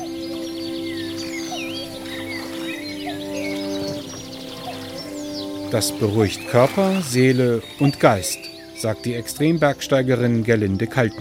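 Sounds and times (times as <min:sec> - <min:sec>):
gently lapping lake water of the Attersee at Steinbach: 0:00.0 - 0:10.9
birds chirping and singing: 0:00.0 - 0:11.1
speech: 0:05.7 - 0:11.1.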